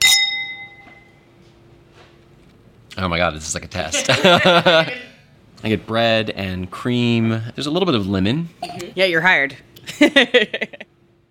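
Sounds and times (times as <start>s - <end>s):
glasses clinking in a toast: 0.0s - 1.2s
speech: 3.0s - 10.9s
laughter: 3.9s - 5.2s, 9.9s - 10.9s.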